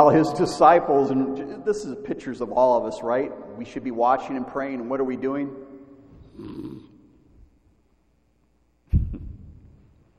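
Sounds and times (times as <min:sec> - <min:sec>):
speech: 0:00.0 - 0:05.6, 0:06.4 - 0:06.9
person imitating snoring: 0:06.2 - 0:06.9.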